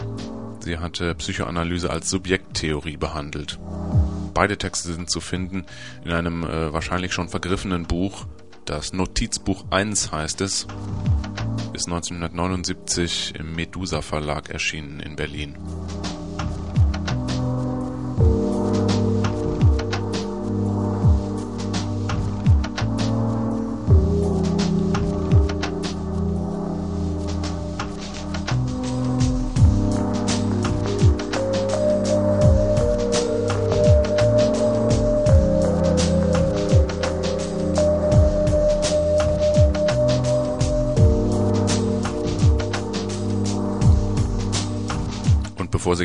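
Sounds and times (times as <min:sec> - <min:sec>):
speech: 0:00.6 - 0:16.1
hectic instrumental music with sharp percussive hits: 0:03.6 - 0:04.4, 0:08.2 - 0:11.9, 0:15.5 - 0:46.0.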